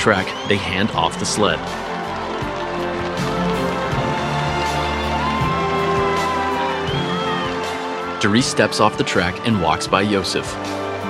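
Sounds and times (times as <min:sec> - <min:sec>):
speech: 0:00.0 - 0:01.9, 0:08.2 - 0:10.9
large crowd cheering and shouting with whoops: 0:00.0 - 0:11.0.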